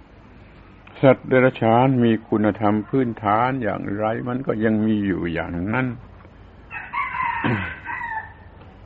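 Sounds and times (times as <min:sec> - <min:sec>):
speech: 0:01.0 - 0:06.1, 0:07.4 - 0:07.8
rooster crowing: 0:06.7 - 0:08.6.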